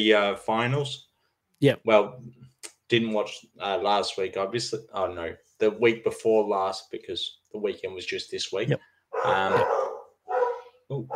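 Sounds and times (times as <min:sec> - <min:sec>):
speech: 0:00.0 - 0:09.8, 0:10.9 - 0:11.1
dog barking: 0:09.2 - 0:11.1.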